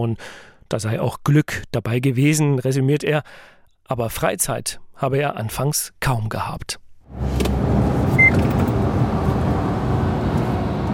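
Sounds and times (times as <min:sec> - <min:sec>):
speech: 0:00.0 - 0:07.5
truck cruising at 90 km/h on a motorway: 0:07.1 - 0:10.9.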